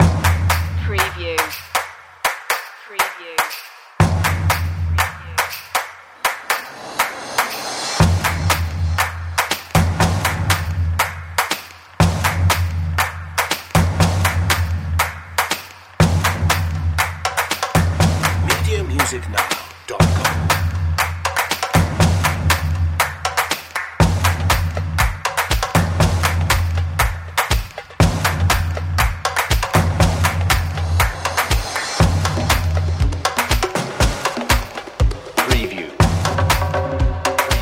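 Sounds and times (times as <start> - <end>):
energetic drums: 0.0 - 37.6.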